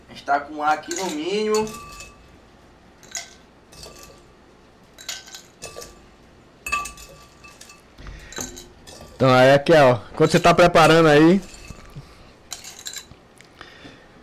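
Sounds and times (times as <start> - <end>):
speech: 0.2 - 1.9, 9.2 - 11.5
ice cubes clinking against a drinking glass: 0.8 - 2.3, 3.0 - 4.3, 5.0 - 6.0, 6.6 - 9.4, 10.2 - 13.2.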